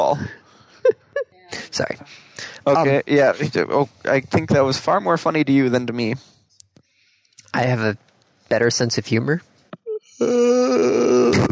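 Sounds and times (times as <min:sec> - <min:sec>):
speech: 0:01.8 - 0:06.3, 0:07.6 - 0:09.5, 0:10.2 - 0:11.4
person yawning: 0:09.9 - 0:11.4.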